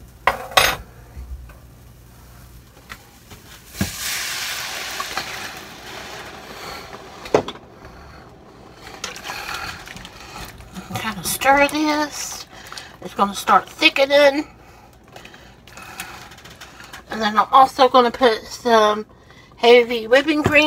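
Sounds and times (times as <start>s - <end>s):
beef broth poured into a pan for gravy: 3.6s - 11.3s
speech: 11.4s - 12.3s, 13.0s - 14.5s, 17.2s - 20.6s.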